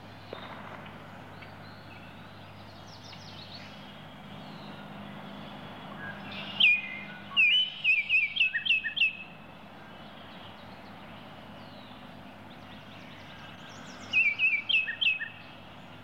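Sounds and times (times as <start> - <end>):
Baltimore oriole giving sharp, slurred whistles: 6.0 - 9.4, 13.8 - 15.6.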